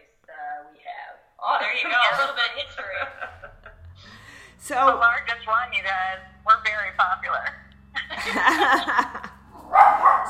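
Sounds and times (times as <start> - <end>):
laughter: 1.8 - 4.6, 8.0 - 9.5
speech: 4.6 - 7.6, 8.2 - 9.2
dog barking: 9.6 - 10.2.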